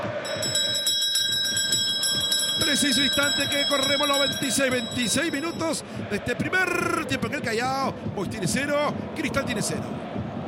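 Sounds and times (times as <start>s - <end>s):
bell rung to mark elapsed time during a football match commentary: 0.1s - 5.8s
speech: 2.7s - 10.1s.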